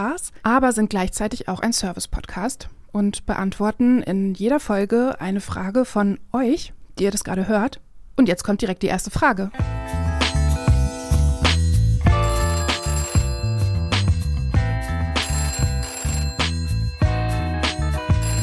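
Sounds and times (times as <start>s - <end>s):
speech: 0.0s - 10.0s
telephone ringing before an answering machine picks up: 10.2s - 18.4s.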